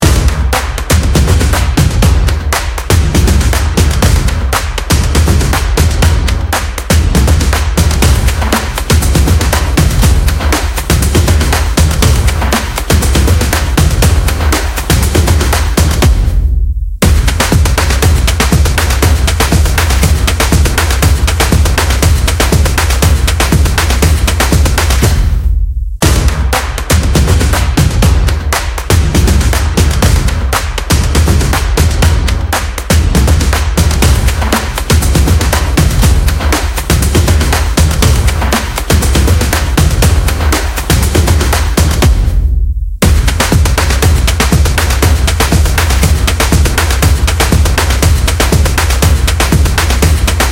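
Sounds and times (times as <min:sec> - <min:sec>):
energetic stomping: 0:00.0 - 0:25.4, 0:26.0 - 0:50.4.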